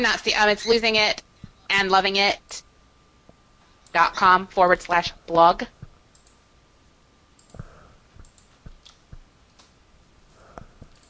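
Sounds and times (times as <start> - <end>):
speech: 0.0 - 2.7, 3.9 - 5.8
low steady background: 0.0 - 11.0
typing on a computer keyboard: 6.1 - 6.4, 7.4 - 9.7, 10.5 - 11.0.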